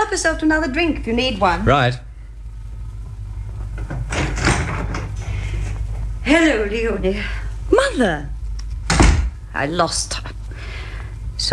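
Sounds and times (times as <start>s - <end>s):
low hum: 0.0s - 11.5s
speech: 0.1s - 2.1s, 6.3s - 8.4s, 9.6s - 10.3s
front door scraping as it swings open: 3.8s - 5.2s.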